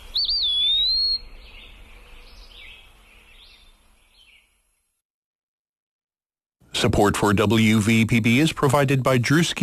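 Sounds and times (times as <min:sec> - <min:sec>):
bird giving a clear rising whistled pip call: 0:00.0 - 0:01.3
soft bird chirps: 0:00.0 - 0:04.9
speech: 0:06.8 - 0:09.6.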